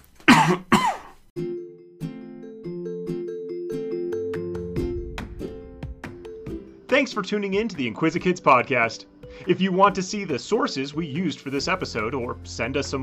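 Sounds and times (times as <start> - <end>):
person coughing: 0.3 - 1.2
speech: 0.5 - 0.7, 7.0 - 13.0
light bouncy melody of plucked notes: 1.4 - 7.9.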